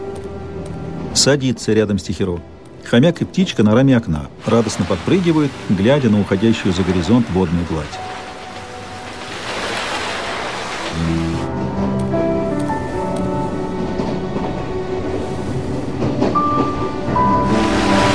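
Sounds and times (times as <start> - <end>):
speech: 1.2 - 8.2
train rolling past a small island across open water: 4.4 - 18.1.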